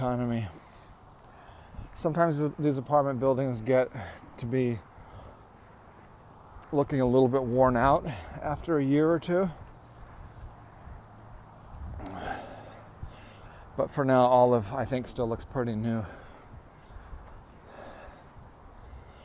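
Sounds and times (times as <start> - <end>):
speech: 0.0 - 0.6, 2.0 - 4.9, 6.7 - 9.6, 13.8 - 16.2
heavy breathing while walking uphill: 0.5 - 2.0, 3.9 - 5.8, 11.9 - 13.8, 16.0 - 19.2.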